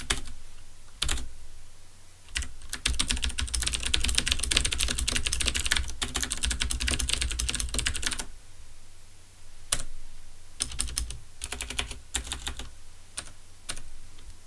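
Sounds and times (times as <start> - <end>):
Das Keyboard typing: 2.3 - 8.3, 10.6 - 13.8.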